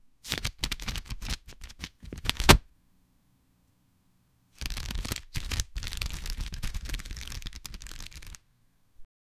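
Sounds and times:
cards being shuffled: 0:00.2 - 0:02.6, 0:04.6 - 0:08.4.

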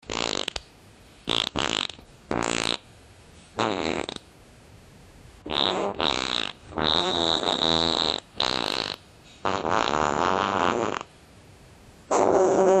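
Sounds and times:
rooster farting in a farmyard: 0:00.0 - 0:00.6, 0:01.3 - 0:02.8, 0:03.6 - 0:04.2, 0:05.5 - 0:11.1, 0:12.1 - 0:12.7.

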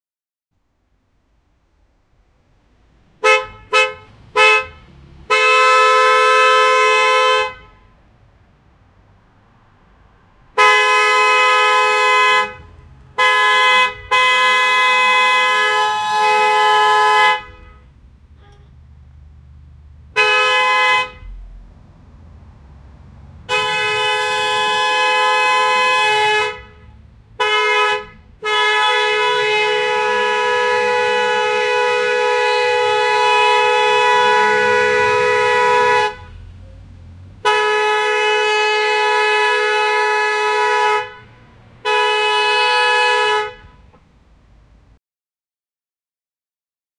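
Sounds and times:
car horn: 0:03.1 - 0:08.1, 0:09.8 - 0:44.2.

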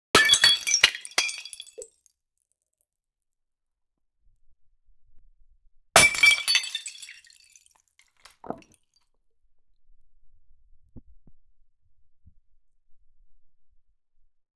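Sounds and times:
glass sound: 0:00.2 - 0:01.9, 0:06.0 - 0:07.5, 0:08.2 - 0:08.6.

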